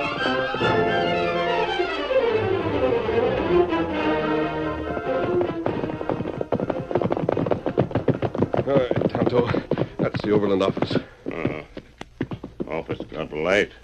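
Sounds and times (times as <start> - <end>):
sweeping orchestral music: 0.0 - 6.8
galloping horse hoofbeats: 0.0 - 13.8
speech: 8.7 - 9.6, 10.3 - 11.1, 12.9 - 13.8.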